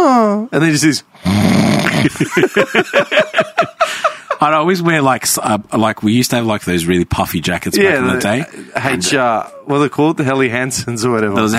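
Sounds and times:
speech: 0.3s - 11.5s
person imitating their own loud snore: 1.2s - 2.2s
laughter: 1.9s - 4.4s.

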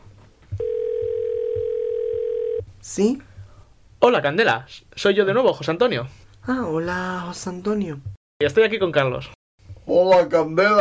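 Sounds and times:
telephone ringing tone while placing a call: 0.6s - 2.6s
speech: 2.9s - 3.3s, 4.0s - 10.7s.

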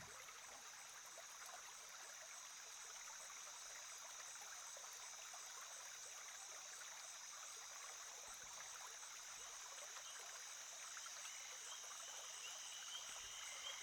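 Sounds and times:
stream water flowing: 0.0s - 13.8s.

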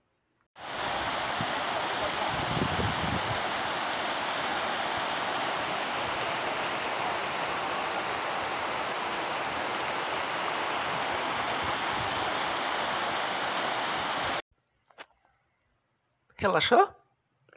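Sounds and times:
small waterfall cascading in a canyon: 0.6s - 14.4s
speech: 16.4s - 17.0s.

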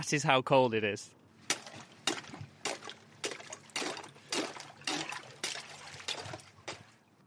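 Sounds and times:
speech: 0.0s - 1.2s
icy pond water scooped and splashing into a cup: 1.5s - 7.0s.

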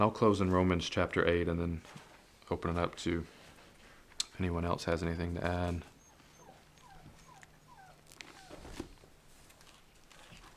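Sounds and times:
speech: 0.0s - 3.4s, 4.4s - 5.9s
dog whimpering in short high whines: 5.9s - 8.9s.

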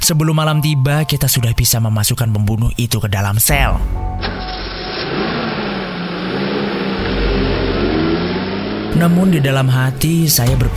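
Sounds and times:
speech: 0.0s - 4.5s, 9.0s - 10.7s
car engine starting, revving and pulling away: 4.0s - 10.7s.

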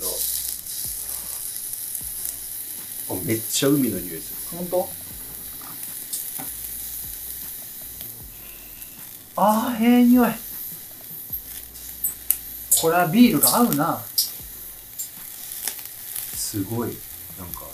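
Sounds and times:
people chatting: 0.0s - 0.3s, 3.1s - 5.2s, 9.4s - 10.4s, 12.7s - 14.1s, 16.4s - 17.7s
oysters sizzling and crackling on a hot grill: 0.0s - 17.7s
speech: 3.2s - 5.0s, 9.4s - 10.4s, 12.8s - 14.1s, 16.5s - 17.6s.

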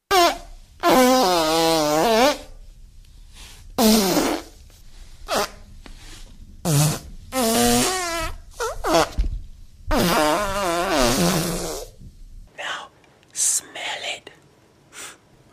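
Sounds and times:
mouth-made fart sounds into a microphone: 0.1s - 2.6s, 3.8s - 4.6s, 5.3s - 5.6s, 6.6s - 12.0s
soft whispery rustles: 12.5s - 14.5s.

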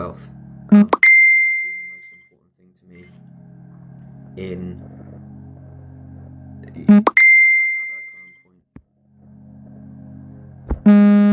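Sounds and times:
speech: 0.0s - 0.9s, 4.4s - 4.9s, 6.9s - 7.2s
high pure tone: 0.7s - 8.6s, 9.8s - 11.3s
mobile phone alert chime: 0.8s - 2.2s, 6.9s - 8.3s.

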